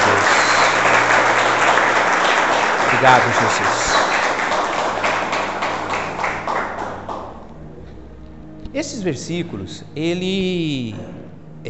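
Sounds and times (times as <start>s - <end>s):
crowd applauding: 0.0s - 7.6s
speech: 3.0s - 3.8s, 8.8s - 11.6s.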